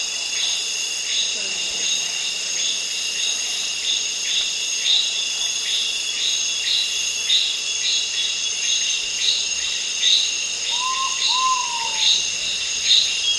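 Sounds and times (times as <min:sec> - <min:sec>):
steady high-pitched insect chorus pulsing in Indonesia: 0:00.0 - 0:13.3
Great pitta Pitta maxima giving whistled notes in Indonesia: 0:10.7 - 0:12.3.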